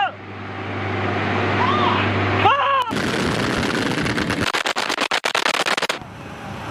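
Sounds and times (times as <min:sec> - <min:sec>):
low hum: 0:00.1 - 0:06.4
anti-aircraft guns of an air-defence unit firing at enemy aircraft: 0:02.9 - 0:06.0.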